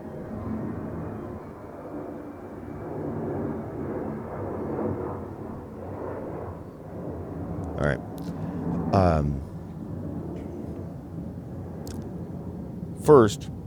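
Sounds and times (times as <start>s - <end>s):
airplane passing overhead: 0.0s - 13.6s
speech: 7.8s - 9.5s, 13.0s - 13.5s.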